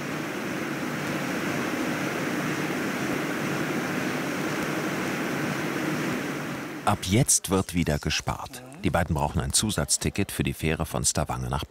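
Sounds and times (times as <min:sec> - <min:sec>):
waterfall water rushing near a boat: 0:00.0 - 0:08.4
speech: 0:06.9 - 0:11.6.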